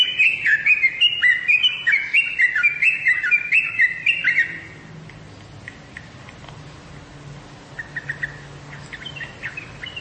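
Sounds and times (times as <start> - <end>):
bird chirping: 0.0 - 6.4, 7.7 - 9.9
faint low background noise: 0.0 - 9.9.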